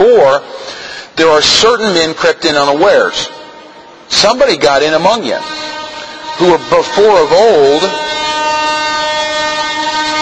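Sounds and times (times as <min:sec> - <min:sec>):
speech: 0:00.1 - 0:03.4, 0:04.1 - 0:05.6, 0:06.4 - 0:08.0
train horn blaring: 0:04.8 - 0:10.1.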